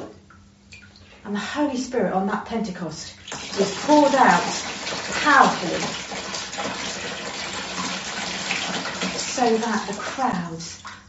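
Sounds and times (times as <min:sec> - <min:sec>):
speech: 0:01.2 - 0:06.8, 0:09.4 - 0:10.9
water pouring: 0:03.2 - 0:11.0.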